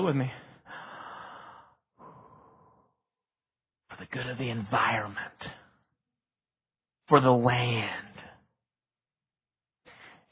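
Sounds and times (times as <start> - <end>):
speech: 0.0 - 0.4, 4.0 - 5.6, 7.1 - 8.0
deep breaths drawn in and let out: 0.4 - 3.1, 9.9 - 10.2.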